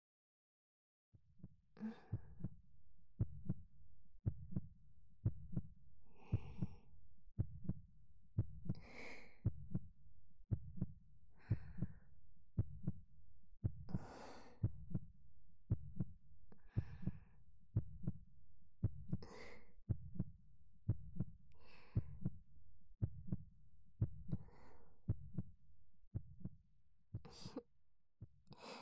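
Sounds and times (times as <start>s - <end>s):
heartbeat heard through a chest: 1.4s - 2.6s, 3.2s - 7.8s, 8.4s - 9.9s, 10.5s - 12.0s, 12.6s - 13.0s, 13.6s - 18.2s, 18.8s - 22.4s, 23.0s - 25.5s, 26.1s - 26.6s
soft breathing: 1.8s - 2.5s, 6.1s - 6.9s, 8.7s - 9.8s, 11.4s - 12.1s, 13.9s - 15.1s, 16.5s - 17.4s, 19.1s - 19.8s, 21.5s - 22.3s.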